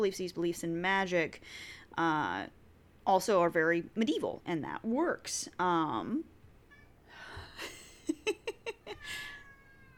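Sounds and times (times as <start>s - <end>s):
speech: 0.0s - 6.3s
cat meowing: 8.9s - 9.9s.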